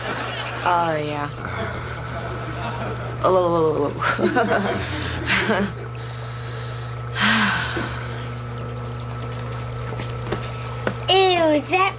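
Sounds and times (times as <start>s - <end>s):
low steady hum: 0.0s - 11.9s
speech: 0.6s - 2.0s, 2.8s - 5.8s, 11.5s - 11.9s
laughter: 1.4s - 3.3s, 4.0s - 6.0s
water splashing as feet soak in a potty: 7.6s - 11.1s.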